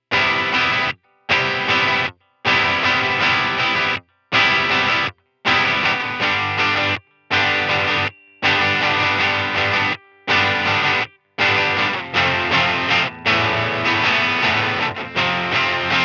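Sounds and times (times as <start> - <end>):
electric guitar with breakup through a Fender Twin Reverb amplifier and EQD Plumes pedal: 0.0 - 16.0.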